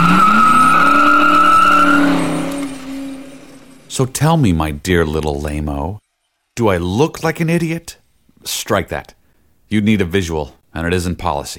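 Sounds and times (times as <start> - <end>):
car engine roaring under hard acceleration: 0.0 - 4.0
car tires screeching: 0.0 - 4.0
speech: 4.0 - 6.0, 6.6 - 11.5.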